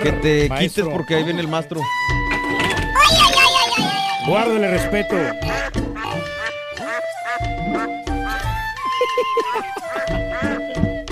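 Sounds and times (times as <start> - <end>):
speech: 0.0 - 2.2, 4.3 - 5.6, 9.2 - 10.9
several ducks quacking: 3.4 - 8.0, 9.4 - 10.9
laughter: 8.3 - 11.0.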